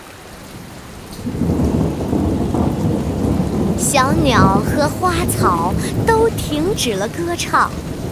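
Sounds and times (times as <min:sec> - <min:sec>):
heavy rainfall during a thunderstorm: 0:00.0 - 0:08.1
deep rolling thunder: 0:01.1 - 0:06.8
speech: 0:03.9 - 0:07.9.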